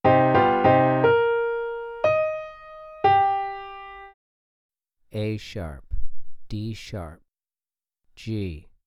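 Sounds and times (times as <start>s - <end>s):
three-note melodic piano phrase in a minor key for ear training: 0.0s - 4.2s.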